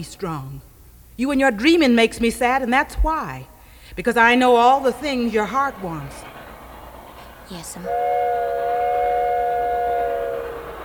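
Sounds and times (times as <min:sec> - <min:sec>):
speech: 0:00.0 - 0:06.3, 0:07.5 - 0:08.8
train whistle blowing: 0:04.5 - 0:10.8.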